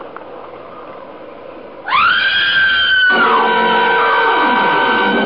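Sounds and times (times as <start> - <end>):
woman screaming long and loud: 1.9 - 5.2.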